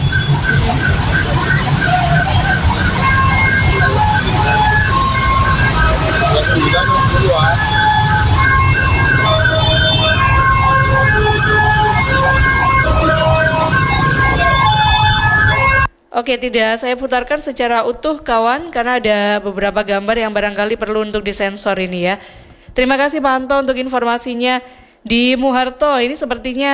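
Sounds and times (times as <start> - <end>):
ambulance siren wailing at accident scene: 0.0 - 15.9
busy street noise: 0.0 - 15.9
crowd of voices murmuring and calling out: 0.0 - 15.9
low traffic rumble: 0.0 - 15.9
speech: 16.2 - 26.7.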